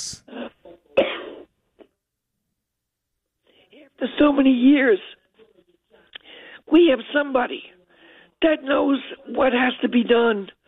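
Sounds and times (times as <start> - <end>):
forceful harsh rasping throat clearing: 0.4 - 1.5
speech: 4.0 - 5.2, 6.7 - 7.8, 8.4 - 10.6.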